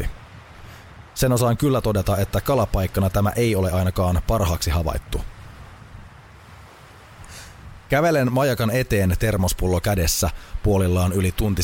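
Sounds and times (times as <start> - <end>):
sea waves washing along the shore in front of a lighthouse: 0.0 - 11.6
strong wind at shore buffeting the microphone: 0.0 - 11.6
speech: 1.2 - 5.3, 7.9 - 11.6.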